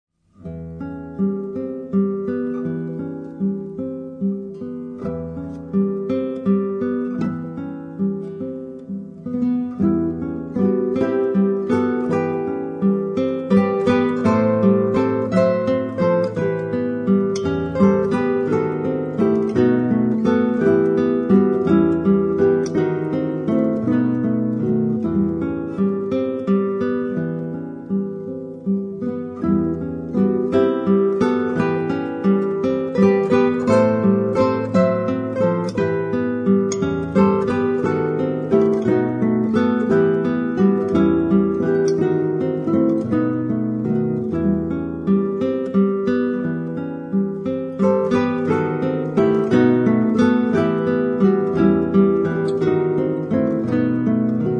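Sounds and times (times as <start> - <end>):
song on classical guitar: 0.1 - 54.5.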